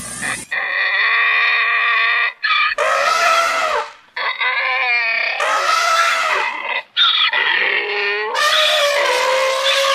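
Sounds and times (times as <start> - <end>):
donkey braying: 0.5 - 9.9
elephant trumpeting: 0.5 - 9.9.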